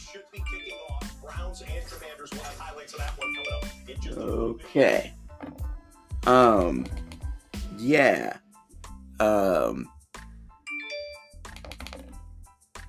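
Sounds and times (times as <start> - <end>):
iPhone notification chimes: 0.4 - 1.1, 3.2 - 3.9, 10.7 - 11.4
speech: 1.6 - 5.2, 6.2 - 7.0, 7.8 - 8.4, 9.2 - 9.9
swelling wordless vocal tones: 3.0 - 5.1, 6.1 - 8.4
brief tinkling tail: 3.2 - 3.9.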